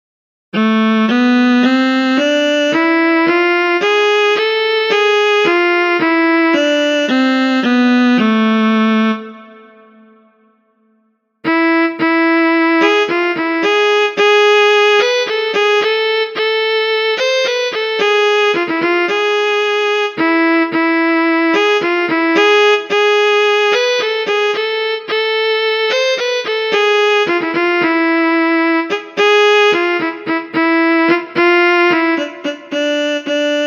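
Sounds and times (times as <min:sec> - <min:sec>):
harmonic minor scale melody: 0:00.6 - 0:33.6.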